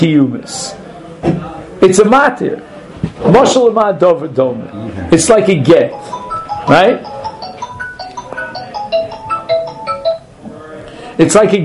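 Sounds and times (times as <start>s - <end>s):
speech: 0.0s - 7.1s, 11.2s - 11.6s
phone ringtone with bright repeating electronic melody: 5.4s - 10.3s.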